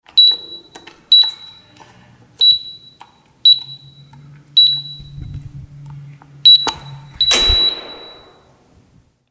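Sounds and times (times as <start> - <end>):
electronic key tone: 0.1 - 1.8, 2.4 - 5.4, 6.5 - 8.5.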